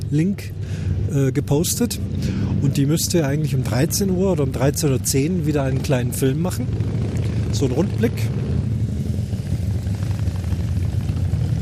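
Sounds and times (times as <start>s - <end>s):
many Harley motorcycles idling and rolling past: 0.0s - 11.5s
speech: 0.1s - 8.4s.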